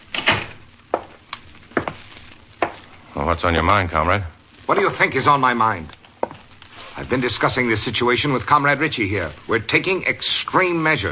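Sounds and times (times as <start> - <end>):
door being shut with sharp clunks and rattles: 0.1 - 0.6
speech: 3.2 - 6.0, 7.0 - 11.1.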